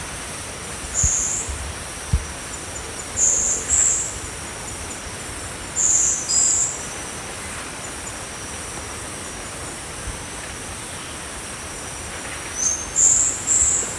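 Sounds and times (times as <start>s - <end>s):
steady soft hiss: 0.0s - 13.9s
midget flowerpecker high thin buzzy calls: 0.9s - 1.6s, 2.4s - 7.0s, 12.5s - 13.9s.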